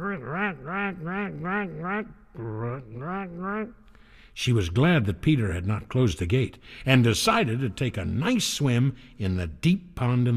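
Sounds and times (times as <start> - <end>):
person imitating duck quacks: 0.0 - 3.8
speech: 0.5 - 2.2, 4.4 - 10.3.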